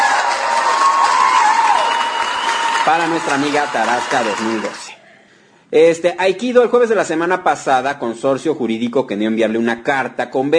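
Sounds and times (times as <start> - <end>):
crowd applause: 0.0 - 4.9
speech: 2.9 - 5.0, 5.7 - 10.5.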